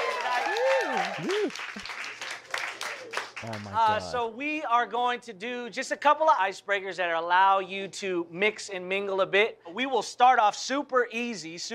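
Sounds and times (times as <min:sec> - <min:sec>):
person cheering: 0:00.0 - 0:01.8
crowd at a singles mixer applauding: 0:00.0 - 0:04.2
speech: 0:01.2 - 0:02.0, 0:03.4 - 0:11.7.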